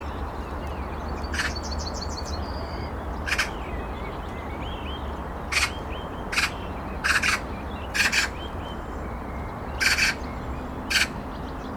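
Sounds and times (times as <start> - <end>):
small birds twittering and whistling faintly: 0.0 - 11.7
Eurasian magpie Pica pica uttering harsh chak notes: 3.3 - 3.5, 6.3 - 7.4, 8.0 - 8.3, 9.8 - 10.2.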